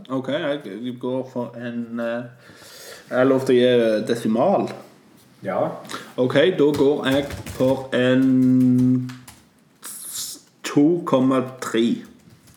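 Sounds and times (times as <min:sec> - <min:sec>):
speech: 0:00.0 - 0:09.2, 0:10.8 - 0:12.1
soft scattered keyboard clicks: 0:06.7 - 0:09.5.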